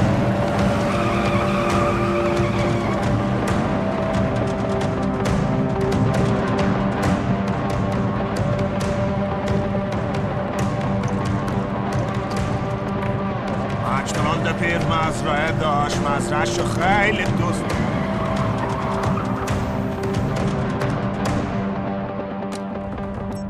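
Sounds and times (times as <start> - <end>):
car tires skidding and squealing in a chase: 0.0 - 5.4, 13.8 - 20.8
car engines roaring in a chase: 0.0 - 23.3.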